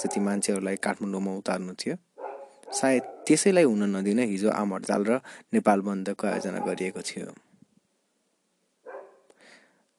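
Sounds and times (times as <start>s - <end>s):
dog barking outside: 0.0s - 0.4s, 2.2s - 3.3s, 6.3s - 7.0s, 8.9s - 9.3s
speech: 0.0s - 2.1s, 2.7s - 7.5s
hiss: 0.0s - 9.9s.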